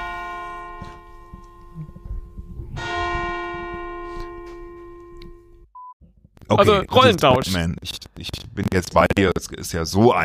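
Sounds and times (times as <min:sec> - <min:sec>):
small bells ringing: 0:00.0 - 0:05.5
speech: 0:06.5 - 0:10.2.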